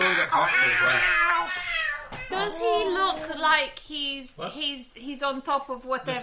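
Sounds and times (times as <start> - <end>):
speech: 0.4 - 1.6, 2.4 - 6.2
cat jumping around yowling: 0.4 - 3.0.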